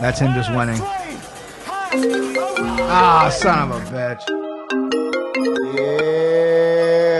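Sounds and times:
speech: 0.0 - 1.0, 1.9 - 2.2, 2.9 - 4.4, 5.4 - 6.2
mobile phone ringtone from a phone connected to a computer: 1.9 - 6.5.

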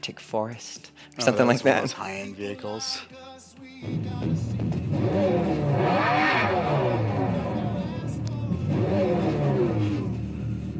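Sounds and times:
speech: 0.0 - 6.2
Dodge Charger Daytona SRT electric muscle car revving: 4.2 - 10.7.

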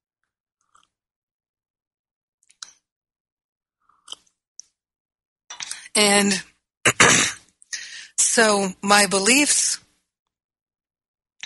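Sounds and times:
person sipping espresso with wet slurping mouth sounds: 0.6 - 1.0
speech: 6.0 - 7.4, 8.4 - 9.8.

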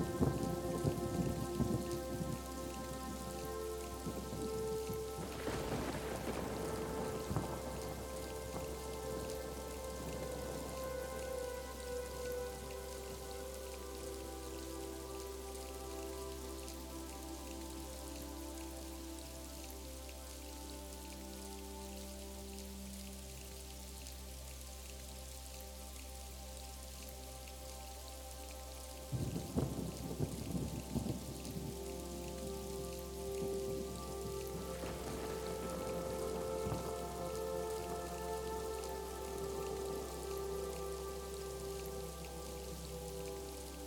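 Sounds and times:
wind gusts: 0.0 - 13.2, 29.1 - 38.4
soft music with sustained low tones and quiet melodic lines: 0.0 - 43.8
steady rain: 0.0 - 43.8.

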